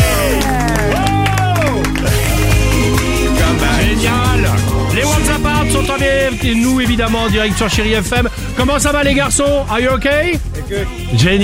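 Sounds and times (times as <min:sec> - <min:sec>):
excited whoops and shouts: 0:00.0 - 0:01.9
small group clapping and cheering: 0:00.0 - 0:05.9
speech: 0:06.4 - 0:11.4.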